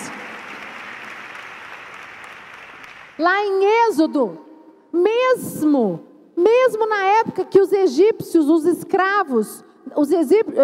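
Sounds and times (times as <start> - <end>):
audience applauding: 0.0 - 3.2
speech: 3.2 - 10.6.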